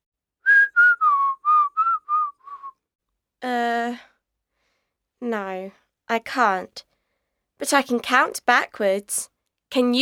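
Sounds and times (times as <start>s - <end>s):
person whistling quick notes sliding downward: 0.4s - 2.9s
speech: 3.4s - 4.1s, 5.2s - 6.9s, 7.6s - 9.9s.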